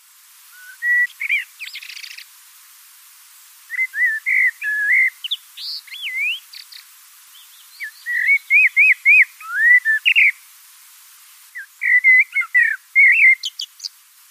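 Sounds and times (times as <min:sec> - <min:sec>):
common blackbird singing fluty whistled phrases: 0:00.6 - 0:02.3, 0:03.7 - 0:10.4, 0:11.6 - 0:14.0.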